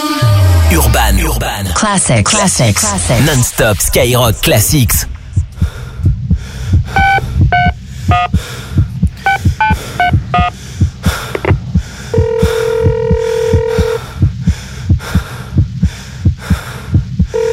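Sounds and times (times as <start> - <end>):
heartbeat-like low throbbing pulse: 0.2 - 1.7, 3.0 - 17.3
speech: 1.9 - 5.1
telephone ringing tone: 12.1 - 14.0, 17.3 - 17.5.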